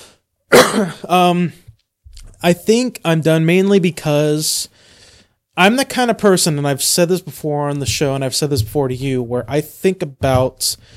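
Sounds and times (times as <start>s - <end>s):
short voiced throat-clearing grunt: 0.5s - 1.1s
person coughing: 0.5s - 1.2s
speech: 0.8s - 1.6s, 2.4s - 4.9s, 5.6s - 10.9s.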